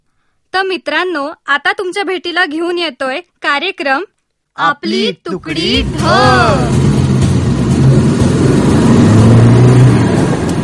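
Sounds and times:
speech: 0.6 - 6.8
noisy background: 4.6 - 10.6
car engine revving: 5.4 - 10.6.

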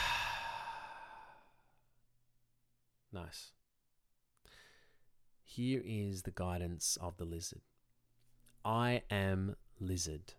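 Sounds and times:
deep exhale out through the mouth during a guided breathing exercise: 0.0 - 1.6
speech: 3.1 - 3.6, 5.5 - 7.7, 8.6 - 10.3.

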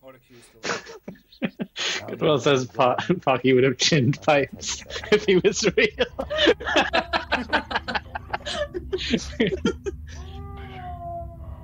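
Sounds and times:
speech: 0.2 - 1.1, 2.1 - 7.6, 9.1 - 9.8
laughter: 0.6 - 10.3
cat meowing: 10.1 - 11.6.

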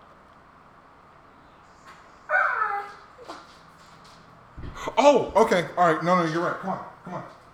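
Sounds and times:
dog whining for attention: 2.2 - 3.4
speech: 5.0 - 7.4.

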